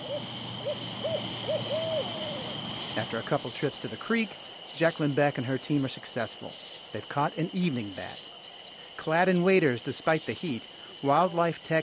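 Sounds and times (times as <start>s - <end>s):
owl hooting at night at a bat-netting site: 0.0s - 5.1s
hiss: 0.0s - 11.8s
speech: 3.0s - 8.3s, 9.0s - 11.8s.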